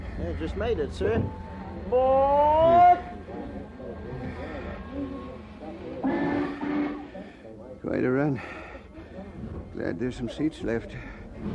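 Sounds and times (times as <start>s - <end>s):
speech: 0.2s - 2.8s, 7.8s - 8.6s, 9.8s - 11.5s
passenger train whistle blast at a station: 6.0s - 7.1s.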